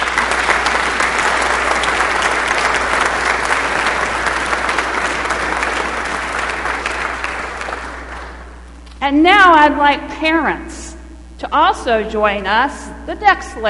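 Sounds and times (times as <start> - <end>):
audience applauding: 0.0 - 8.8
speech: 9.1 - 10.8, 11.4 - 13.6.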